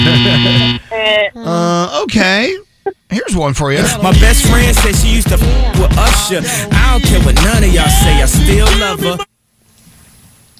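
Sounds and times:
loud harsh game show buzzer: 0.0s - 0.9s
speech: 2.0s - 2.6s, 3.4s - 9.3s.

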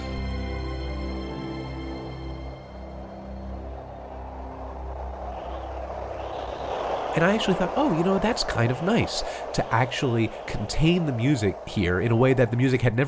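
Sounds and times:
propeller plane engine droning hum: 0.0s - 13.0s
broad rush of wind noise: 2.7s - 13.0s
speech: 7.2s - 13.0s.

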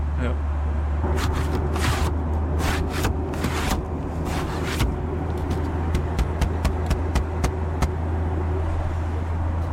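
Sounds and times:
steady low airplane cabin engine drone: 0.0s - 9.7s
passenger airplane window shade sliding open and closed: 1.2s - 4.9s.

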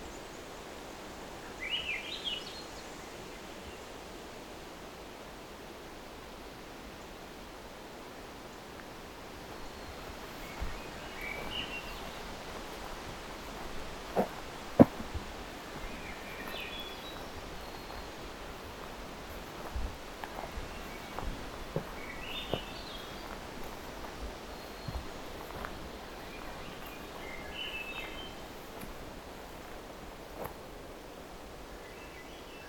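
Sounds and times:
steady hiss of rustling woodland ambience: 0.0s - 32.6s
two forest thrushes singing: 8.6s - 32.6s.

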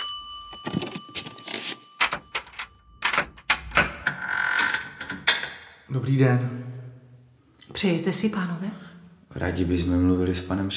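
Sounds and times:
apartment doorbell ringing in Ostrava: 0.0s - 5.2s
apartment door clunking and rattling open: 0.7s - 5.8s
speech: 5.9s - 6.7s, 7.7s - 10.7s.

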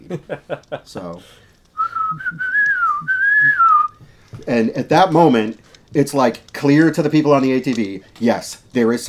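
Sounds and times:
laughter: 0.0s - 1.2s
speech: 0.1s - 1.4s, 2.1s - 3.6s, 4.5s - 9.0s
person whistling a familiar tune: 1.8s - 4.0s.

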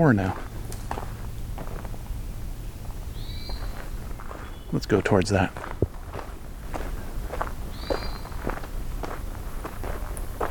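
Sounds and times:
speech: 0.0s - 0.4s, 4.7s - 5.7s
hermit thrush singing a flute-like phrase: 0.0s - 5.4s, 7.6s - 8.7s
faint rustling footsteps on a hike: 0.0s - 10.4s
outdoor noise on a hike: 0.0s - 10.4s.

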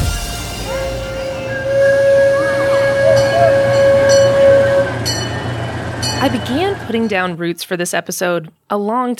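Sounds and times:
horn-like train whistle: 0.1s - 6.4s
train rumbling and clacking on rail joints: 0.2s - 7.3s
speech: 6.9s - 9.1s.

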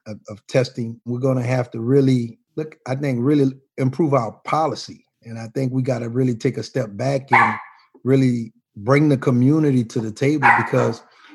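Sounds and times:
speech: 0.1s - 11.1s
dog barking: 7.3s - 7.8s, 10.4s - 11.1s.

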